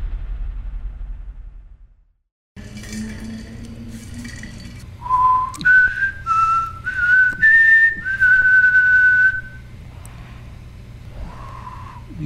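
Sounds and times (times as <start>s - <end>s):
person whistling a tune: 5.0s - 9.7s.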